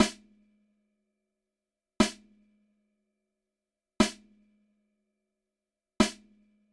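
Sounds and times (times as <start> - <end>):
snare drum with 3 ms dual mono delay: 0.0 - 0.2, 2.0 - 2.2, 4.0 - 4.2, 6.0 - 6.2.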